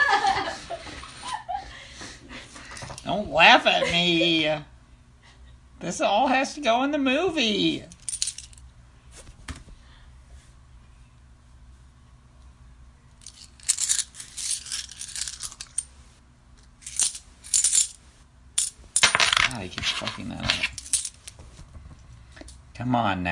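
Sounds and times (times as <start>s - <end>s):
low hum: 0.0s - 23.3s
speech: 3.1s - 4.7s, 5.8s - 7.9s, 22.9s - 23.3s
metallic coins clinking and jingling: 7.9s - 8.6s, 13.2s - 15.9s, 16.8s - 18.0s, 18.6s - 21.4s.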